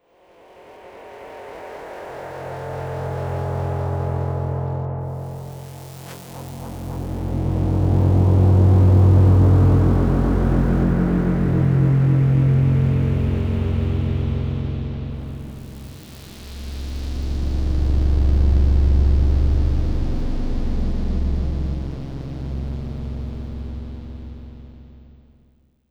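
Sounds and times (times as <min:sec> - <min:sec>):
scoring drone: 0:00.7 - 0:25.1.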